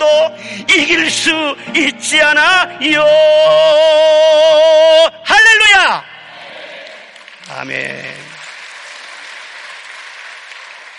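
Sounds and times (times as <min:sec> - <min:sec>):
speech: 0:00.3 - 0:06.1, 0:07.5 - 0:08.2
congregation applauding: 0:06.4 - 0:10.9.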